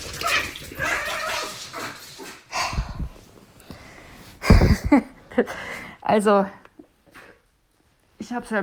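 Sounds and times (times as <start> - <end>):
dogs growling and yipping over a burger treat for dogs: 0.0 - 3.0
speech: 4.9 - 6.6, 8.3 - 8.6.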